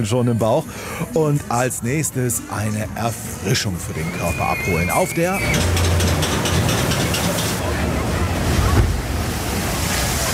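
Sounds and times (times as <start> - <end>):
speech: 0.0 - 6.2
roaring water: 0.6 - 10.3
water ride boat splashing down a chute: 3.1 - 10.3.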